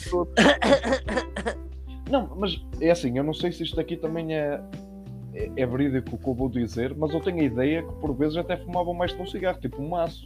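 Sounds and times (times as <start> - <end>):
speech: 0.0 - 1.2, 2.1 - 10.2
harsh breathy coughs: 0.4 - 1.6.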